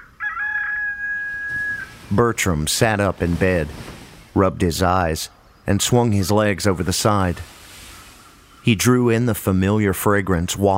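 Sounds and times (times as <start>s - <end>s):
rooster crowing: 0.0s - 2.0s
speech: 2.1s - 7.6s, 8.6s - 10.7s.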